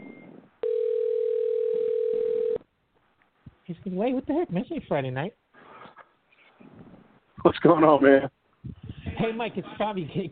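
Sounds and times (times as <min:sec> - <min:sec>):
telephone dial tone while a call is placed: 0:00.6 - 0:02.6
speech: 0:03.7 - 0:05.4, 0:07.4 - 0:08.4, 0:09.2 - 0:10.3.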